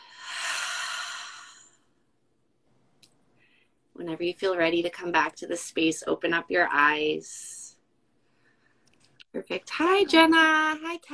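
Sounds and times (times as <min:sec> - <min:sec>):
deep belly breath exhaled slowly during a guided breathing exercise: 0:00.0 - 0:01.8
speech: 0:04.0 - 0:07.6, 0:09.3 - 0:11.1.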